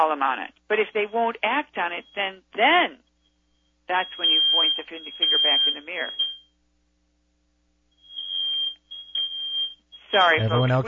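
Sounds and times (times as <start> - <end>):
speech: 0.0 - 3.0, 3.9 - 6.3, 10.1 - 10.8
smoke alarm being tested sounding a high-pitched tone: 3.2 - 6.6, 7.9 - 10.8.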